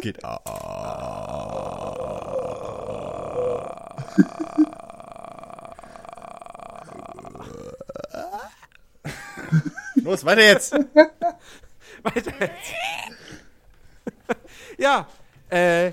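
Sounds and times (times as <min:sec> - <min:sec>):
speech: 0:00.0 - 0:00.8, 0:03.4 - 0:04.8, 0:10.1 - 0:13.1, 0:14.8 - 0:15.9
voice making guttural burp-like sounds: 0:00.0 - 0:08.7, 0:12.2 - 0:13.2
laughter: 0:04.0 - 0:04.8, 0:12.0 - 0:13.2.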